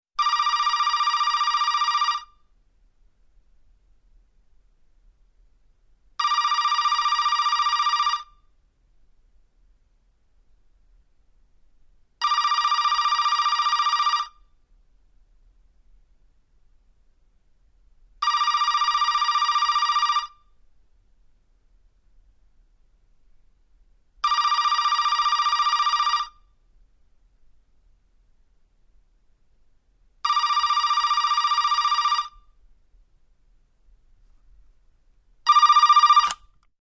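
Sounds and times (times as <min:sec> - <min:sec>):
electric telephone ringing: 0:00.2 - 0:02.3, 0:06.2 - 0:08.3, 0:12.2 - 0:14.3, 0:18.2 - 0:20.3, 0:24.2 - 0:26.4, 0:30.3 - 0:32.4, 0:35.5 - 0:36.4.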